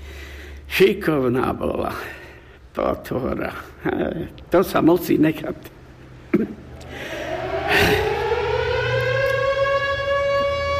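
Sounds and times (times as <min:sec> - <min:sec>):
speech: 0:00.8 - 0:02.2, 0:02.8 - 0:06.6
civil defense siren test wailing: 0:06.7 - 0:10.7.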